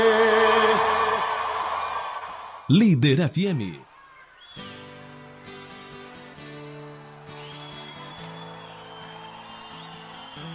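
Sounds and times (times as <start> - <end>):
vocal whoop: 0.0 - 2.4
speech: 2.7 - 3.8.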